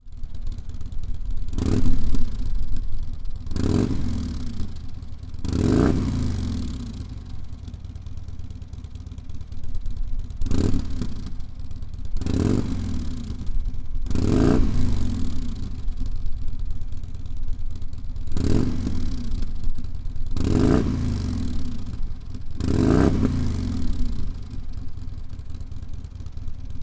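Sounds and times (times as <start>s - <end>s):
Harley Touring 103 motorcycle engine revving with slip-on mufflers: 0.4s - 17.2s, 18.1s - 26.8s.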